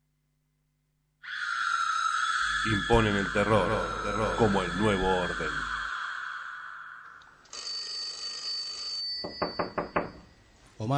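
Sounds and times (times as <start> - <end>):
steady electronic tones: 1.4 - 7.5
speech: 2.6 - 5.7
telephone ringing: 7.5 - 10.4.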